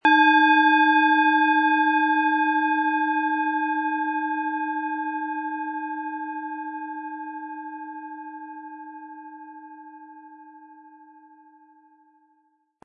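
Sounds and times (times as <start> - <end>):
Eros planetary singing bowl struck with mallet: 0.0 - 10.3.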